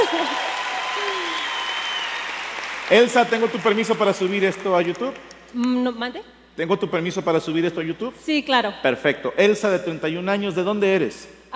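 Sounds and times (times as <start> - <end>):
audience applause: 0.0 - 5.2
speech: 2.9 - 11.5.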